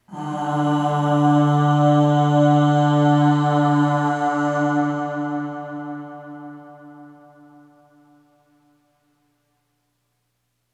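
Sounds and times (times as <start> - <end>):
long voice singing aah with long reverb: 0.0 - 7.0.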